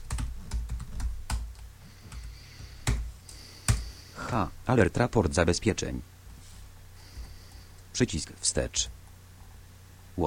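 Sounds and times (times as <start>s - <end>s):
typing on a computer keyboard into a web browser address field: 0.0s - 3.0s
speech: 4.3s - 6.1s, 8.0s - 9.0s.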